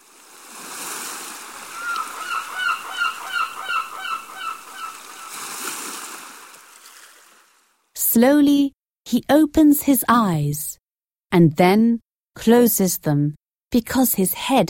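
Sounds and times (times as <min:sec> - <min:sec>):
sea surf washing: 0:00.0 - 0:07.7
flock of birds honking over the sea: 0:01.6 - 0:05.4
speech: 0:08.2 - 0:14.6.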